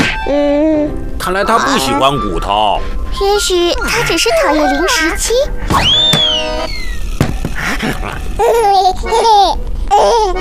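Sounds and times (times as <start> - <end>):
hungry baby boy with no teeth babbling and giggling: 0.2 - 2.1, 3.2 - 5.5, 8.4 - 10.3
speech: 1.3 - 6.8, 7.8 - 10.3.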